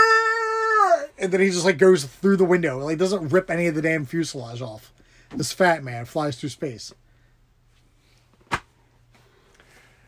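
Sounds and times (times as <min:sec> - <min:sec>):
quiet room hum: 0:00.0 - 0:10.0
speech: 0:01.2 - 0:07.0
man slapping his own leg: 0:08.4 - 0:08.8.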